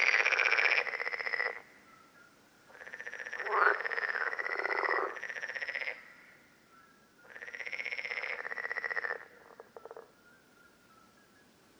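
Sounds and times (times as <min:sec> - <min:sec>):
common parsley frogs calling with rapid pulsed grating croaks in Lerouville, Lorraine, France: 0:00.0 - 0:06.5, 0:07.2 - 0:10.2.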